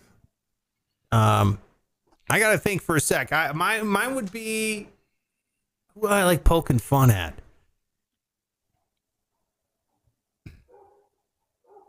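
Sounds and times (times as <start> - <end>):
speech: 1.1 - 1.7, 2.3 - 5.0, 6.0 - 7.4
dog barking at neighbour's dogs: 10.6 - 11.8.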